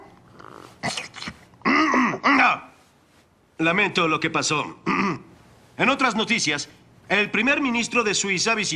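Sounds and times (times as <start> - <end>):
person clearing throat with something stuck, harsh hacks and coughs: 0.8 - 2.5, 4.8 - 5.3
speech: 3.6 - 5.2, 5.8 - 8.7.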